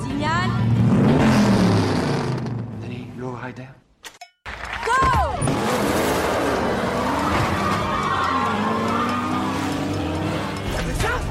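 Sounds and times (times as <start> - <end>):
race cars racing at about 250 km per hour, engine roar: 0.0 - 3.2, 5.4 - 11.2
speech: 3.5 - 3.8
race car tire squeal: 6.5 - 10.6.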